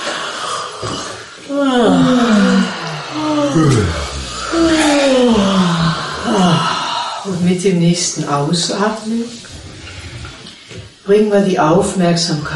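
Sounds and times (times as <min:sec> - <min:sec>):
speech: 0:00.8 - 0:05.4, 0:07.3 - 0:09.6, 0:11.1 - 0:12.5
person yawning: 0:00.9 - 0:07.4.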